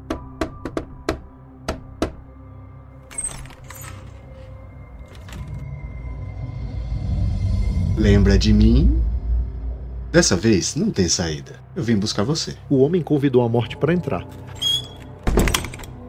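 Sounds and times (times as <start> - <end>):
sharp knocks on a door: 0.0 - 2.2
low rumble: 4.8 - 11.7
speech: 8.0 - 9.1, 10.1 - 14.6.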